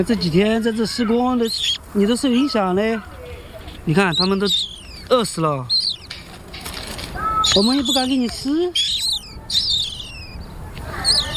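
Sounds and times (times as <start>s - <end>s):
speech: 0.0s - 3.2s, 3.9s - 5.8s, 7.5s - 8.9s
magpies calling around a construction site: 0.0s - 11.3s.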